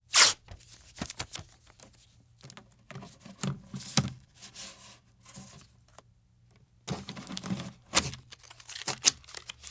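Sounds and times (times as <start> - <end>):
tape handling: 0.1 - 4.7, 6.9 - 9.6.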